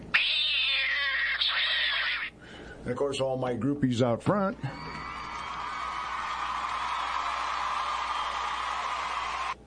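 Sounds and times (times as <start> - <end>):
cat meowing: 0.1 - 2.4
speech: 2.9 - 4.8
crowd cheering and applause: 4.7 - 9.6.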